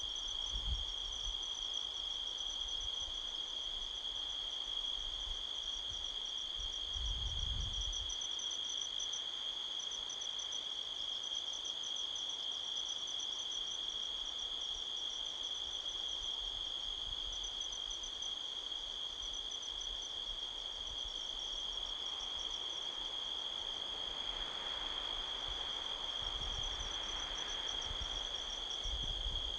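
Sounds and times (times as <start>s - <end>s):
strong wind gusts across the canyon rustling trees: 0.0s - 8.4s, 20.4s - 29.5s
crickets trilling at midnight in Sedona Arizona USA: 0.0s - 29.5s.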